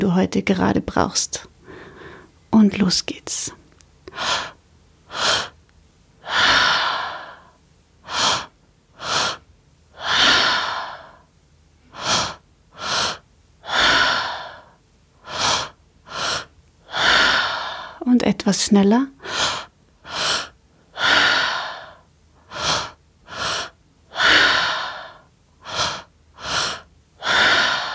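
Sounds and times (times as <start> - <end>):
speech: 0.0 - 1.5, 2.6 - 3.6, 4.2 - 4.5, 18.5 - 19.2
rhythmic deep breathing exercise by an instructor: 1.6 - 2.4, 4.0 - 5.6, 6.2 - 11.3, 11.9 - 18.0, 19.2 - 27.9.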